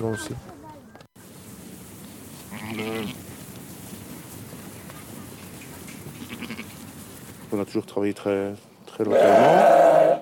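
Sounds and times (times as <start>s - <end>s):
speech: 0.0s - 0.6s, 2.7s - 3.2s, 7.5s - 10.2s
outdoor hiss: 0.0s - 10.2s
sheep bleating: 2.5s - 3.2s, 6.2s - 6.8s, 9.1s - 10.2s.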